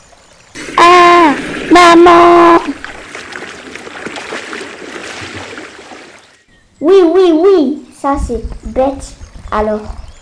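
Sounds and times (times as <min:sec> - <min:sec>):
turbulent river water splashing and churning as a boat capsizes: 0:00.0 - 0:06.5
speech: 0:08.0 - 0:10.0.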